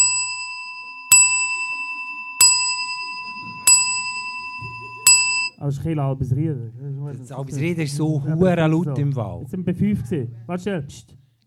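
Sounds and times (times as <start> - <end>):
church tower bell striking midnight: 0.0 - 5.5
speech: 5.6 - 11.2.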